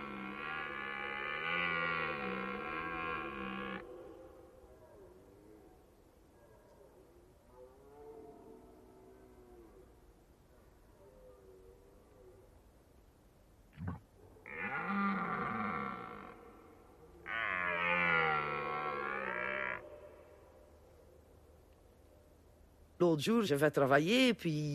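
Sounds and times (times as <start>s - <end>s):
red deer stag bellowing during rut: 0.0s - 4.1s, 14.4s - 16.5s, 17.2s - 20.2s
speech: 23.0s - 24.7s.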